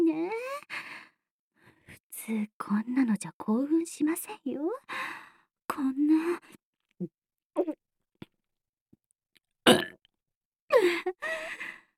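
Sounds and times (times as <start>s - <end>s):
speech: 2.3s - 5.1s, 5.8s - 7.8s, 10.8s - 11.7s
person burping: 9.7s - 10.0s.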